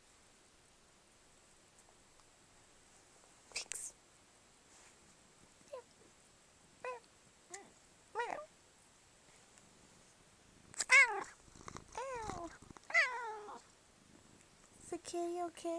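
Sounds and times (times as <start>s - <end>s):
faint steady hum: 0.0s - 15.7s
cat meowing: 10.8s - 13.6s.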